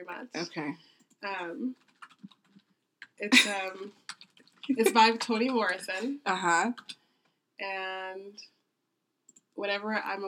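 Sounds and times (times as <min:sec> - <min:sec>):
speech: 0:00.1 - 0:01.9, 0:03.2 - 0:04.0, 0:04.7 - 0:07.0, 0:07.6 - 0:08.6, 0:09.6 - 0:10.2
soft keystrokes on a computer keyboard: 0:01.8 - 0:02.8, 0:03.9 - 0:05.8
brief voiced vocal sounds: 0:03.1 - 0:06.2.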